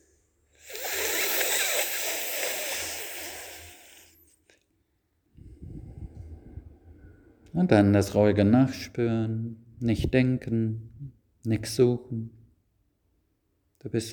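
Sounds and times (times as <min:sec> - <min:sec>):
slow breathing during a guided relaxation exercise: 0:00.0 - 0:04.3, 0:05.4 - 0:07.5
speech: 0:07.6 - 0:12.4, 0:13.8 - 0:14.1.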